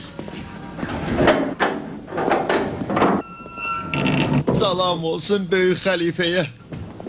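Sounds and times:
wooden door being opened in a hurry: 1.0 - 4.7
speech: 4.7 - 6.6.

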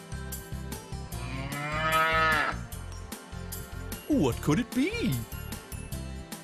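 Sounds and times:
cow mooing: 1.2 - 2.6
steady rhythmic backing music track: 2.7 - 6.4
speech: 4.1 - 5.4.

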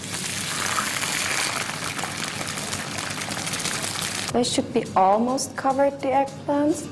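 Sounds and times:
water pouring into a cooking pot holding eggplant, onion and garlic: 0.0 - 4.3
speech: 4.3 - 6.9.

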